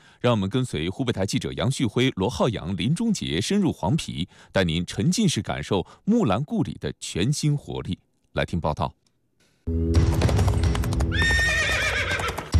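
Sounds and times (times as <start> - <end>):
speech: 0.2 - 9.0, 9.7 - 10.2
faint hoof clatter: 10.0 - 12.5
war horses neighing: 11.1 - 12.5.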